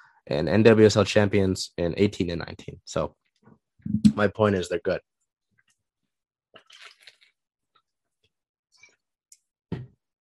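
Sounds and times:
speech: 0.3s - 3.2s, 3.8s - 5.1s
person sipping water with wet mouth clicks: 6.6s - 7.4s.

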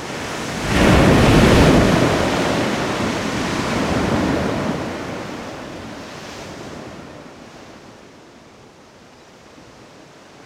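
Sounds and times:
long roaring wash of foam: 0.0s - 6.0s
ocean wave breaking with a loud crash: 0.0s - 7.2s.

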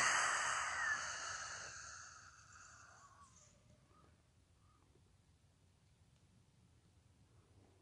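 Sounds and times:
forceful breath of fire exhale through the open mouth: 0.0s - 3.3s.

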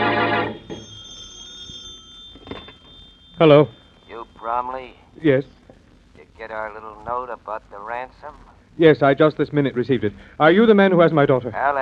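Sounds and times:
old-fashioned telephone bell ringing: 0.0s - 5.2s
speech: 3.4s - 3.8s, 4.4s - 5.6s, 6.4s - 11.8s.

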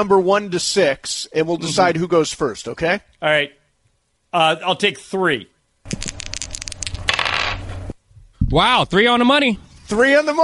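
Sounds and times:
speech: 0.0s - 3.6s, 4.3s - 6.0s, 8.5s - 10.4s
dice rolled to decide who goes first in a game: 5.9s - 7.6s.

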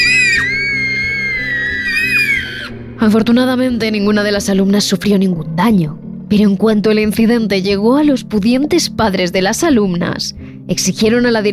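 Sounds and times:
girls screaming in a classroom: 0.0s - 2.8s
speech: 3.0s - 11.5s.

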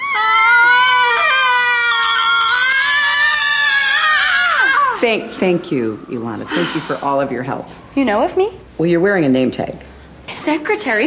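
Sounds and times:
two women screaming excitedly at a campaign office in Brooklyn: 0.0s - 5.0s
speech: 5.0s - 11.0s.

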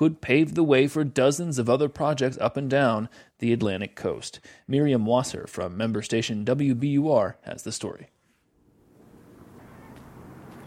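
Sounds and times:
speech: 0.0s - 8.2s
wind blowing across an open concrete terminal at a port-city harbor: 8.7s - 10.6s.

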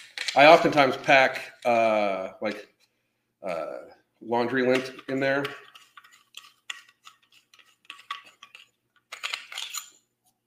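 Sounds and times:
speech: 0.4s - 2.7s, 3.4s - 5.7s
metallic clinks, taps and scrapes from handling a knife with a small saw blade: 5.5s - 10.0s.

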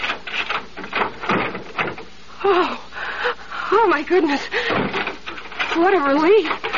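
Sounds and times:
door chain lock rattling: 0.0s - 2.1s, 4.6s - 6.7s
speech: 2.4s - 2.8s, 3.8s - 4.9s, 5.8s - 6.7s.

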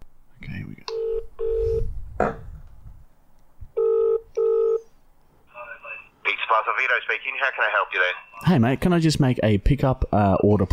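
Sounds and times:
loud double-ring telephone ringback tone: 1.0s - 1.9s, 3.8s - 4.8s
short telephone tone of dialing: 3.8s - 4.8s
speech: 6.8s - 10.7s.

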